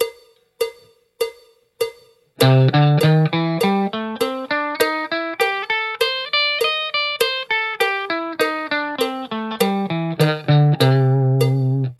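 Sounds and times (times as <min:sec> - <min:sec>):
blues guitar with straight feel: 0:02.4 - 0:11.9.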